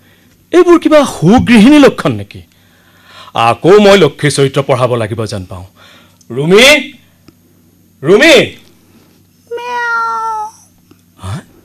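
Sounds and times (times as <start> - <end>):
speech: 0.5 - 2.5, 3.3 - 7.0, 8.0 - 8.6
cat meowing: 9.5 - 10.7.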